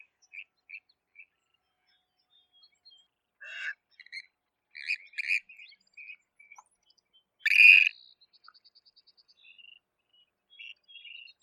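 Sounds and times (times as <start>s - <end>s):
white-faced grebe calling: 3.4s - 3.9s, 7.4s - 7.9s.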